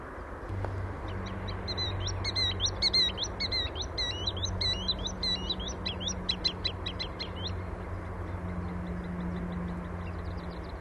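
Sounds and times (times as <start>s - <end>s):
low droning hum: 0.2s - 10.7s
green sandpiper calling with clear rising whistles at the Plattling settling ponds: 1.1s - 7.6s.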